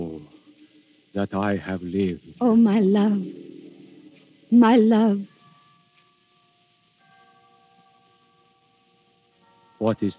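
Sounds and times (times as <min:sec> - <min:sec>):
speech: 0:01.2 - 0:03.4, 0:04.5 - 0:05.3, 0:09.8 - 0:10.1
hall clock chiming the three-quarter hour: 0:04.6 - 0:10.1.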